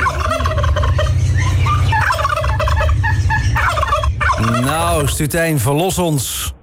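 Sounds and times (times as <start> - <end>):
turkey gobbling: 0.0 - 5.2
steady low hum: 0.0 - 6.6
speech: 5.0 - 6.6.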